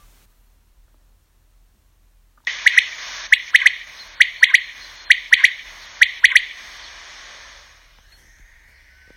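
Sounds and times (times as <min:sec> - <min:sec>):
steady background hiss: 0:00.0 - 0:09.1
bird giving sharp high chirps: 0:02.5 - 0:07.1.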